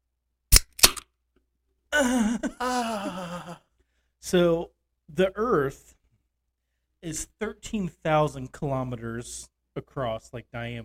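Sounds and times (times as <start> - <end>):
cold can of beer cracking open: 0.5 - 1.0
speech: 2.0 - 3.6, 4.2 - 6.0, 7.0 - 10.8.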